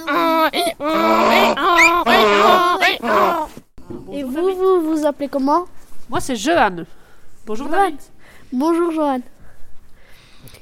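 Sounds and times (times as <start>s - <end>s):
person imitating a donkey braying: 0.0s - 3.5s
speech: 5.1s - 9.3s.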